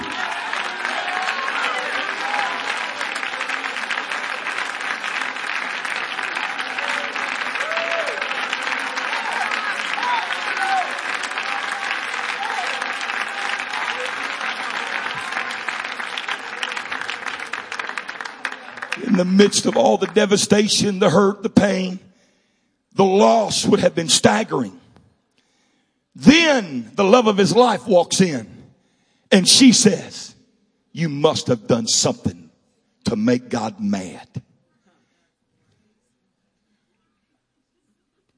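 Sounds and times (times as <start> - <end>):
scattered cheers and voices: 0.0 - 4.8, 6.0 - 19.6
large crowd applauding: 0.0 - 21.9
speech: 19.2 - 22.0, 23.1 - 24.8, 26.6 - 28.5, 29.3 - 30.2, 31.0 - 32.4, 33.1 - 34.5.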